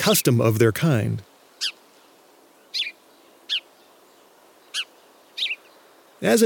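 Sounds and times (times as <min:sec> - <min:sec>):
speech: 0:00.0 - 0:01.3, 0:06.2 - 0:06.4
faint hiss: 0:00.0 - 0:06.4
house sparrows chirping: 0:01.5 - 0:06.4.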